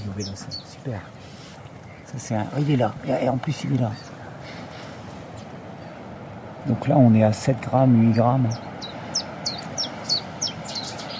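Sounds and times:
Cetti's warbler singing: 0.0s - 2.1s, 3.4s - 6.2s, 8.0s - 11.1s
steady low noise: 0.0s - 11.1s
speech: 0.2s - 1.3s, 2.1s - 4.1s, 6.6s - 8.7s.

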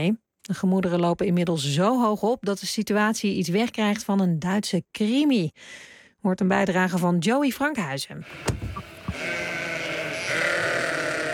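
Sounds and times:
speech: 0.0s - 9.4s
flock of dozens of sheep bleating on a German farm: 9.1s - 11.3s.

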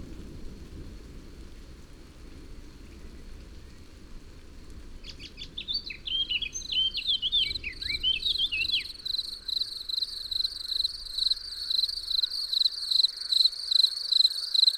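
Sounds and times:
blackbird singing in Massignieu-de-Rives France: 5.1s - 14.7s
crickets chirping in Massignieu-de-Rives France after a thunderstorm: 5.9s - 14.7s.

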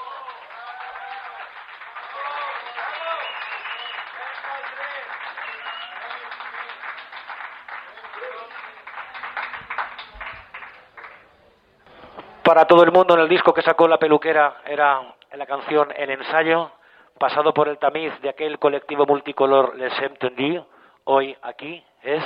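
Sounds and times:
audience applause at a live show in Valencia: 0.0s - 11.4s
speech: 12.5s - 22.2s.

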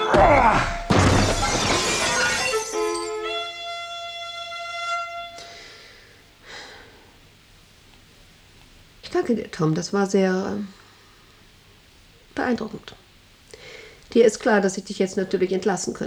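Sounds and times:
office desk crashing through a window: 0.1s - 3.5s
window glass shattering and falling: 0.1s - 3.6s
bright ringing tones: 0.8s - 3.7s
speech: 9.3s - 10.8s, 12.4s - 13.0s, 14.1s - 16.0s.

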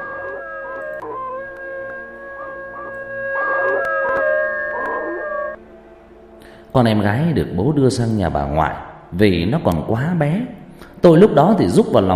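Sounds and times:
neighbour's dog howling like a wolf at night: 0.0s - 5.6s
speech: 6.8s - 12.1s.

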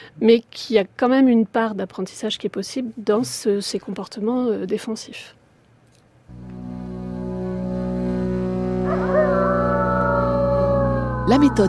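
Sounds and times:
speech: 0.1s - 5.4s, 11.3s - 11.6s
low continuous drone: 6.3s - 11.6s
wolf howling: 8.9s - 11.6s.

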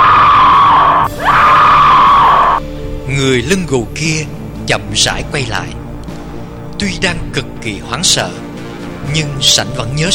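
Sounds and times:
women screaming in terror: 0.0s - 2.6s
speech: 3.2s - 5.8s, 6.8s - 8.4s, 9.0s - 10.1s.

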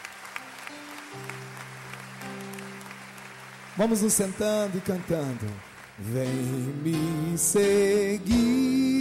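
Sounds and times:
church congregation applauding after a scripture reading: 0.0s - 6.7s
speech: 3.8s - 8.9s.

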